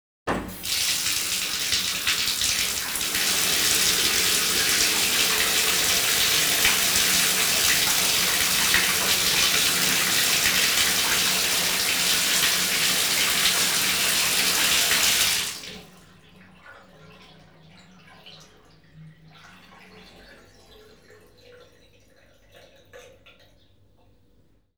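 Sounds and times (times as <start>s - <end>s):
water running into and draining from a bathtub: 0.3s - 23.5s.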